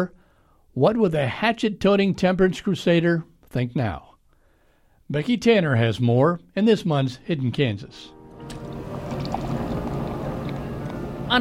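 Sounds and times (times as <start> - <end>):
speech: 0.8 - 4.1, 5.1 - 8.8
beer splashing into a frosty mug at a saloon on a hot afternoon: 8.4 - 11.3.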